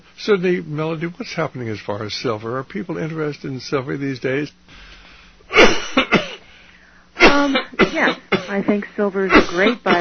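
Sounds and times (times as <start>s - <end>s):
speech: 0.2s - 4.9s, 7.4s - 9.9s
two people coughing: 5.5s - 6.5s, 7.2s - 8.6s, 9.3s - 9.9s.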